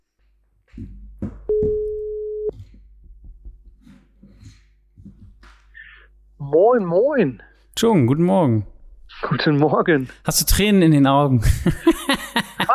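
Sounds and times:
speech: 0.8s - 1.3s, 6.6s - 8.7s, 9.3s - 12.7s
telephone ringing tone while a call is placed: 1.5s - 2.5s
laughter: 11.4s - 12.7s.

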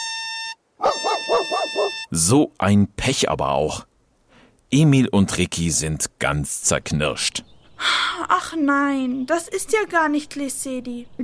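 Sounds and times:
steady buzzing party horn: 0.0s - 2.1s
small dog yapping excitedly: 0.8s - 2.1s
speech: 1.7s - 3.9s, 4.7s - 11.2s.

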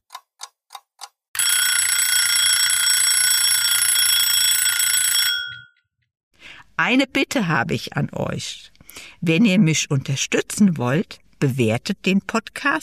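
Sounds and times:
alarm clock ticking clicks: 0.0s - 5.8s
alarm clock metallic bell ringing: 1.4s - 5.8s
speech: 6.8s - 12.8s.

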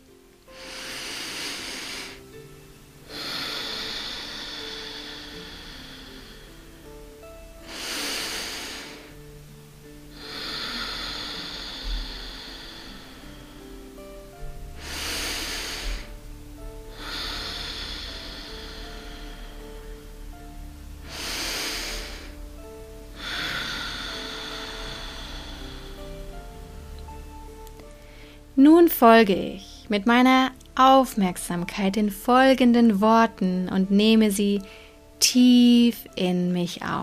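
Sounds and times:
quiet sustained musical backdrop: 0.0s - 37.0s
deep breathing in and out through the nose during a meditation: 0.5s - 2.4s, 3.0s - 9.4s, 10.1s - 26.9s, 27.8s - 28.6s, 34.6s - 35.2s
speech: 28.6s - 37.0s.

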